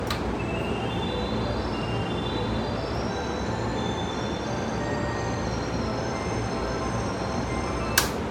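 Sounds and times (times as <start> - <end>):
JR Keihin-Tohoku Line train at Yokodai: 0.0 - 8.2.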